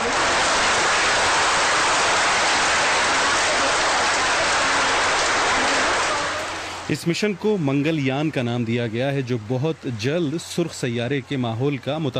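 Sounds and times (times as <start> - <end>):
room full of people applauding in a mission control center: 0.0 - 6.8
speech: 6.9 - 12.1.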